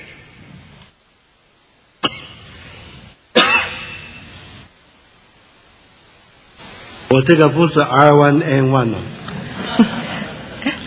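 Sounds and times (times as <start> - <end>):
faint hiss: 0.0 - 10.8
preacher coughing during a sermon: 2.0 - 2.5, 3.3 - 4.1
speech: 7.1 - 9.2, 9.8 - 10.1
laughter: 9.3 - 10.8.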